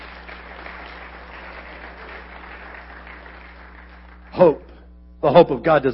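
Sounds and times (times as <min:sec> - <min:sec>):
crowd applauding in a reverberant room: 0:00.0 - 0:04.6
low hum: 0:00.0 - 0:05.9
speech: 0:04.4 - 0:05.9.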